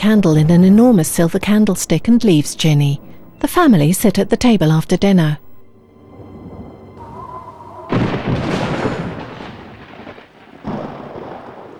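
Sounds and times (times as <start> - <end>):
speech: 0.0 - 5.4
deep rolling thunder in a thunderstorm: 6.1 - 11.7.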